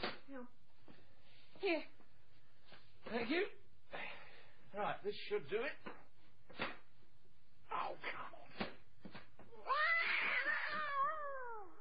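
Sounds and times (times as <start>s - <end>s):
speech: 0.3s - 1.0s, 1.6s - 2.0s, 3.0s - 3.6s, 4.7s - 6.7s
cat yowling: 9.6s - 11.7s.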